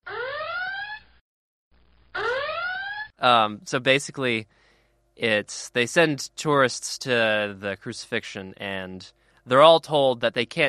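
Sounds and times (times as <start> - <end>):
soft muted electronic siren wailing upward: 0.0 - 1.2, 2.1 - 3.2
speech: 3.2 - 4.6, 5.2 - 10.6.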